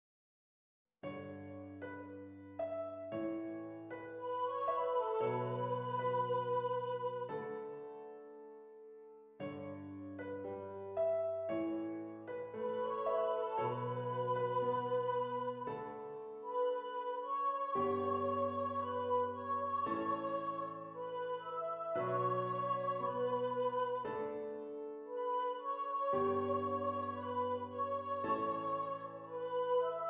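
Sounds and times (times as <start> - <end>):
piano: 1.0 - 30.0
person singing: 4.2 - 7.4, 12.6 - 24.4, 25.1 - 30.0.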